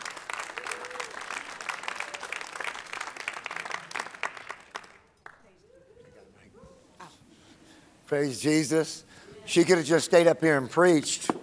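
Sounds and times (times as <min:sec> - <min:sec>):
crowd applauding with hand clapping: 0:00.0 - 0:05.5
speech: 0:08.1 - 0:11.4.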